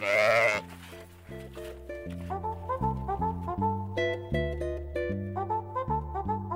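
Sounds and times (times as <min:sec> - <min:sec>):
horned Icelandic sheep bleating: 0:00.0 - 0:00.9
gentle instrumental music with a steady stepping melody: 0:00.0 - 0:06.5.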